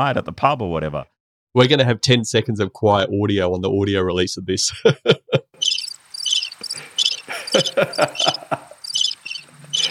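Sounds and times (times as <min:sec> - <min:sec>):
speech: 0:00.0 - 0:05.8, 0:07.6 - 0:08.7
laughter: 0:04.7 - 0:05.6, 0:06.8 - 0:08.9
crickets chirping: 0:05.6 - 0:09.9.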